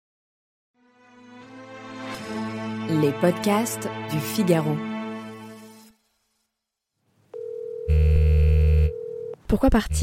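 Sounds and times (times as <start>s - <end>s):
speech: 2.9s - 4.9s, 9.5s - 10.0s
telephone ringing with a harsh buzzing tone: 7.4s - 9.4s.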